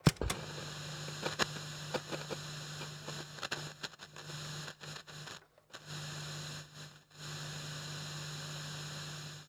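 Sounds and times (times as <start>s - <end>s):
clunk of play button on old portable cassette player: 0.0s - 0.4s
static noise from old portable cassette player: 0.3s - 9.4s.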